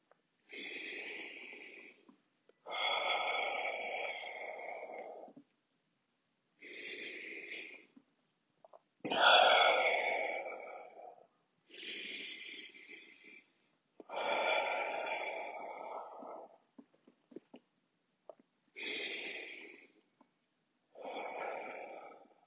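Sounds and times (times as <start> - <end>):
slow deep breathing in a calming breathing exercise: 0.5 - 5.4, 6.6 - 8.0, 9.1 - 17.2, 18.8 - 20.2, 20.9 - 22.4.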